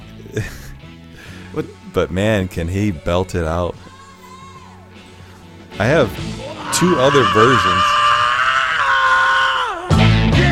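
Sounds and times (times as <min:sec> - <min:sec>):
speech: 0:00.3 - 0:00.7, 0:01.5 - 0:03.9, 0:05.8 - 0:08.0
rough strained shout: 0:06.0 - 0:10.4
person screaming: 0:06.3 - 0:10.4.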